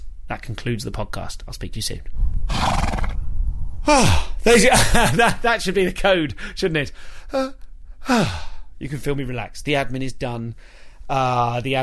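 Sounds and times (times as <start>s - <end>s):
speech: 0.3s - 2.8s, 3.9s - 11.8s
horse whinnying: 2.5s - 3.2s
laughter: 4.5s - 5.5s.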